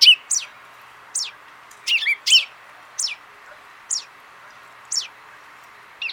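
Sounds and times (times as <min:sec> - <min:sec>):
common chaffinch Fringilla coelebs giving sharp downward-sweeping high calls: 0:00.0 - 0:00.6, 0:01.2 - 0:03.2, 0:03.9 - 0:04.1, 0:04.9 - 0:05.2
steady background hiss: 0:00.0 - 0:06.1.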